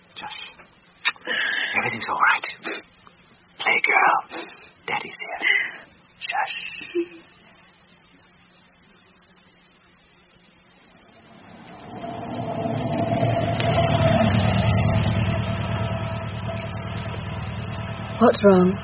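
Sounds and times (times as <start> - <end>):
speech: 0.2 - 0.5, 1.2 - 2.9, 3.7 - 7.3, 18.2 - 18.8
car engine idling and revving: 11.2 - 18.8.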